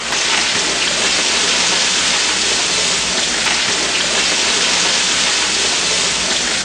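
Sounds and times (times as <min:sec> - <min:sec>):
chicken frying in a pan: 0:00.0 - 0:06.6.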